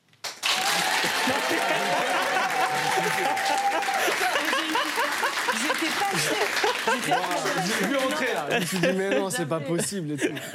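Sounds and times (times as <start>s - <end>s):
studio audience applause: 0.2s - 9.2s
studio audience cheers: 0.4s - 8.4s
laughter: 0.6s - 10.5s
speech: 6.1s - 10.5s.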